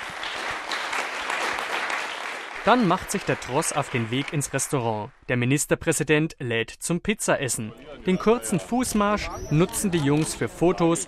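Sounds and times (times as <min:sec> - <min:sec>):
applause from a group of choir boys: 0:00.0 - 0:05.1
speech: 0:02.6 - 0:11.0.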